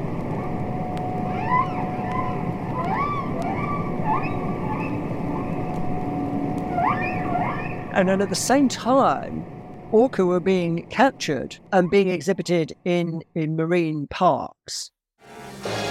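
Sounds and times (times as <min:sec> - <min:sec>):
faint sustained hum: 0:00.0 - 0:13.9
humpback whale song: 0:00.3 - 0:08.0
speech: 0:08.0 - 0:15.4.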